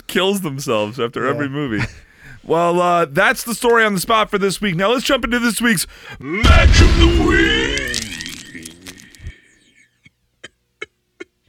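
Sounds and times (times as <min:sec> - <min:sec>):
speech: 0:00.1 - 0:07.6
person clearing throat: 0:07.5 - 0:09.4, 0:10.4 - 0:11.4.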